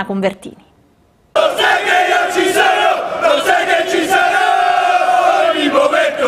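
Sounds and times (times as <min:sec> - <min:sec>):
speech: 0:00.0 - 0:00.7
large crowd of football ultras chanting outdoors in the city centre: 0:01.4 - 0:06.2
shouts from football ultras: 0:01.4 - 0:06.2.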